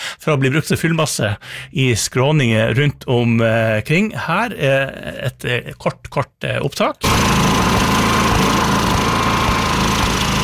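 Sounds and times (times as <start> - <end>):
speech: 0.2 - 7.6
generator engine running: 7.0 - 10.4.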